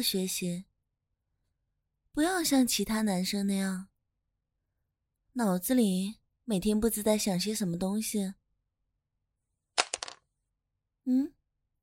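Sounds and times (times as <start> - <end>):
speech: 0.0 - 0.7, 2.2 - 3.9, 5.4 - 8.4, 11.1 - 11.4
pen dropping and clattering onto the floor: 9.8 - 10.2.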